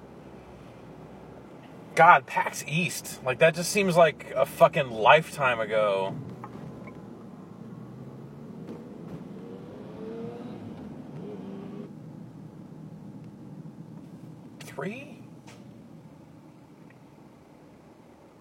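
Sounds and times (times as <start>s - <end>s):
speech: 2.0s - 6.3s, 14.8s - 15.1s
car engine accelerating in traffic behind a bus: 6.0s - 12.0s.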